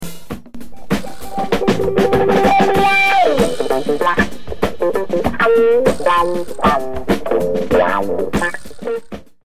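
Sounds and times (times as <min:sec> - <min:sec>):
wah effect: 0:00.7 - 0:09.2.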